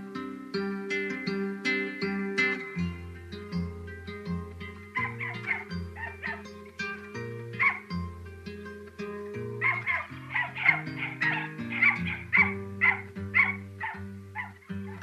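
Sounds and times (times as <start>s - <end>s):
music: 0.0s - 15.0s
dog barking and yelping: 4.9s - 6.6s, 7.6s - 8.0s, 9.5s - 15.0s.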